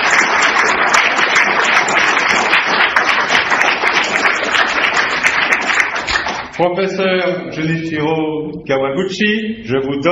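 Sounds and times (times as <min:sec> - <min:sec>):
large crowd applauding a professor: 0:00.0 - 0:06.6
speech: 0:06.6 - 0:10.1.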